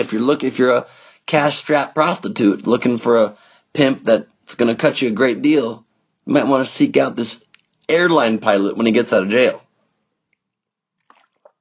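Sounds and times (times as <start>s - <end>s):
speech: 0.0s - 9.6s
person sipping water: 7.3s - 8.0s, 11.0s - 11.6s.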